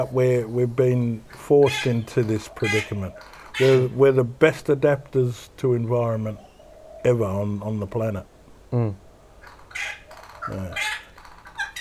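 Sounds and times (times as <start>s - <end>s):
birds squawking and squabbling: 0.0s - 4.2s, 5.8s - 7.8s, 9.3s - 11.7s
speech: 0.0s - 9.0s, 9.8s - 10.8s.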